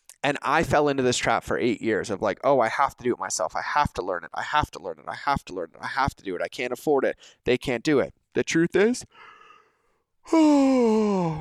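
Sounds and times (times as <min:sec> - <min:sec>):
speech: 0:00.2 - 0:09.3, 0:10.3 - 0:11.3
person yawning: 0:10.2 - 0:11.3.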